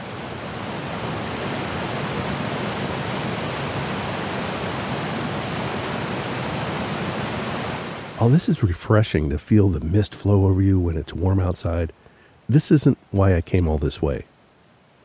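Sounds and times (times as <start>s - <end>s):
waterfall on a river cascading down rocks: 0.0s - 8.5s
speech: 8.2s - 14.3s.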